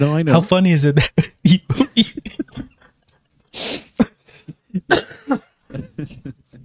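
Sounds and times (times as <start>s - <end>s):
speech: 0.0s - 2.1s
person laughing: 1.2s - 6.6s
person recovering from a cold coughing: 3.6s - 6.0s.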